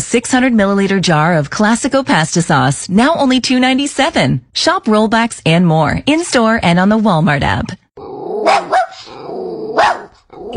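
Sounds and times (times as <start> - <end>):
speech: 0.1 - 9.1
puppy barking: 8.4 - 10.5.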